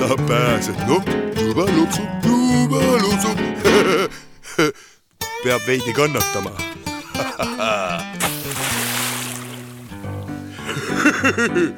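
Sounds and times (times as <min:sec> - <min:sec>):
speech: 0:00.0 - 0:04.8, 0:05.4 - 0:08.1, 0:11.2 - 0:11.7
laughter: 0:06.9 - 0:08.2, 0:10.5 - 0:11.7
splash of a person falling into water while fishing: 0:08.2 - 0:10.4.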